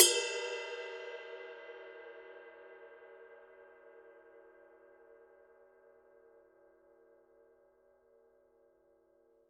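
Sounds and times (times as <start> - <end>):
22-inch bronze ride cymbal bell: 0.0 - 1.4.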